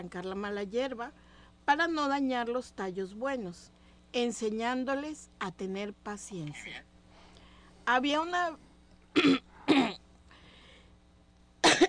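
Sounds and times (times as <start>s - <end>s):
speech: 0.0s - 6.9s, 7.9s - 8.6s, 9.2s - 9.4s
person coughing: 9.2s - 10.0s, 11.6s - 11.8s
person making a short voiced throat sound: 9.2s - 10.0s, 11.6s - 11.8s.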